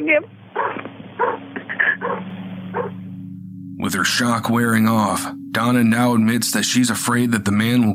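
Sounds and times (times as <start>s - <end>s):
speech: 0.0s - 0.4s, 3.8s - 7.9s
low steady hum: 0.0s - 7.9s
dogs barking: 0.5s - 3.1s.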